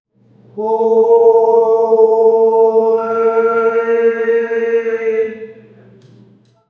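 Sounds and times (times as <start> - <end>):
temple priest murmured chanting: 0.5 - 5.9.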